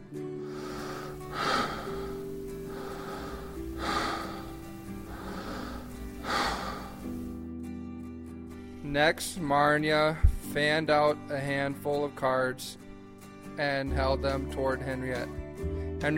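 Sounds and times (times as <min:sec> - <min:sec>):
deep breaths: 0:00.4 - 0:07.4
faint steady tonal background: 0:00.4 - 0:07.4
speech: 0:08.9 - 0:12.8, 0:13.6 - 0:15.4.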